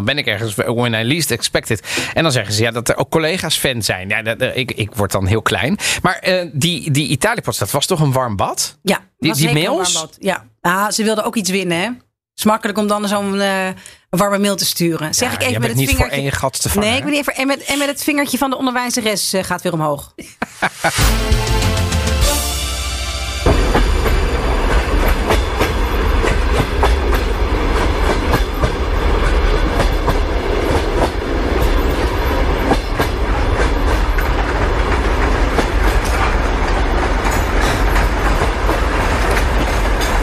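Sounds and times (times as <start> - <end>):
speech: 0.0 - 22.4
laughter: 15.2 - 17.9, 20.2 - 21.2
train wheels clickety-clacking on rails: 22.9 - 40.2.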